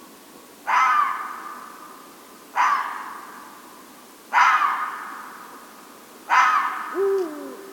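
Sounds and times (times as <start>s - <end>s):
Red fox barking at night: 0.7s - 1.2s, 2.6s - 3.1s, 4.3s - 5.0s, 6.3s - 7.6s
red fox lower wavering call: 6.4s - 7.7s.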